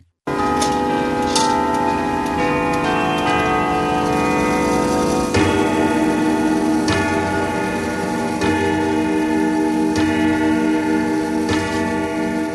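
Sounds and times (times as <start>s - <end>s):
sustained ringing chime-like tones: 0.3s - 12.5s
clock ticking: 0.4s - 12.5s.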